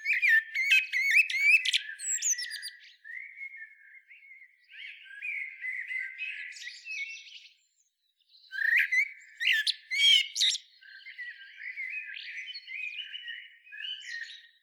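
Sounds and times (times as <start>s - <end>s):
Eurasian blackbird Turdus merula warbling and chirping: 0.0s - 2.8s, 8.5s - 10.7s.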